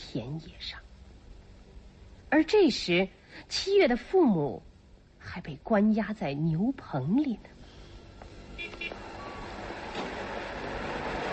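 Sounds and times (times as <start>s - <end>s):
traffic-like rumble: 0.0s - 11.3s
speech: 0.1s - 0.8s, 2.3s - 7.6s
car horn honks: 8.5s - 9.3s.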